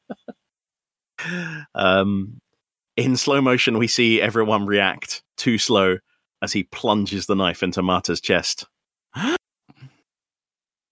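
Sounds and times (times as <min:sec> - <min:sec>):
breathy exhale: 0:01.2 - 0:01.7
person gasping: 0:01.2 - 0:01.8, 0:09.2 - 0:10.0
speech: 0:01.2 - 0:02.4, 0:03.0 - 0:09.4.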